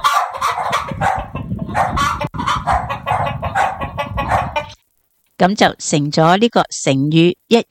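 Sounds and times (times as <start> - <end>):
dogs barking: 0.0 - 4.8
flock of chickens clucking: 0.0 - 4.8
speech: 5.4 - 7.7.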